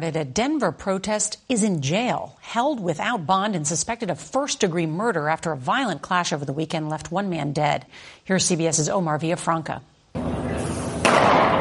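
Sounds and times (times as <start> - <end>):
speech: 0.0 - 10.3
distant gunshot: 11.0 - 11.5.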